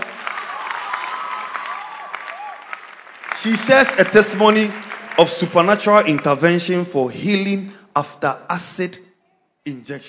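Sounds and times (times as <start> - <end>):
crowd clapping: 0.0 - 7.0
speech: 3.4 - 9.0, 9.6 - 10.0.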